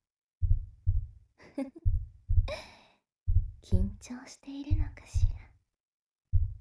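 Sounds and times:
quick heavy heartbeat: 0.4s - 1.2s, 1.8s - 2.6s, 3.3s - 4.0s, 4.7s - 5.5s, 6.3s - 6.5s
speech: 1.6s - 1.9s, 3.7s - 5.4s
person gasping: 2.5s - 3.0s
soft breathy sighs: 2.5s - 3.0s.

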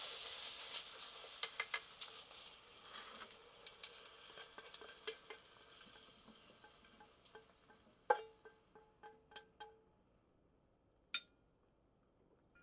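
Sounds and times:
konnyaku and paprika stir-fried with butter and soy sauce sizzling in a pan: 0.0s - 9.7s.

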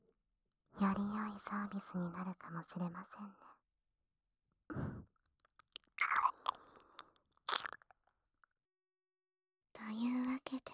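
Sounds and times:
speech: 0.8s - 3.5s, 9.9s - 10.7s
small mouth clicks: 5.4s - 8.0s
wet ASMR ear-licking mouth sounds: 5.6s - 7.8s.

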